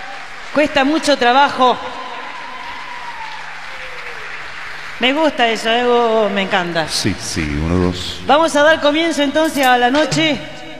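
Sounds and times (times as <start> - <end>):
audience applause at a live evening music event: 0.0 - 7.7
speech: 0.5 - 2.0, 5.0 - 10.6.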